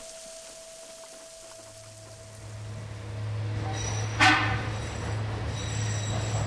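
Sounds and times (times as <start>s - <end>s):
tram carrying workers rumbling in a mine tunnel: 0.0s - 6.4s
sharp metallic squeal of tram wheels: 3.6s - 6.4s.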